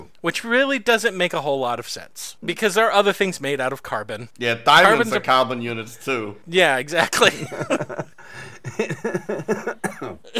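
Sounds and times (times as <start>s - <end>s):
speech: 0.2s - 10.3s
laughter: 7.0s - 10.3s
people coughing: 8.6s - 10.3s
throat clearing: 9.8s - 10.3s.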